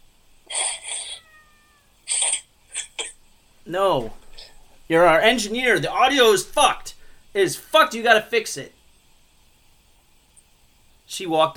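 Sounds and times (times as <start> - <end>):
cat chirping: 0.5 - 3.0
cat meowing: 0.7 - 2.0
speech: 3.7 - 4.2, 4.9 - 8.8, 11.2 - 11.5.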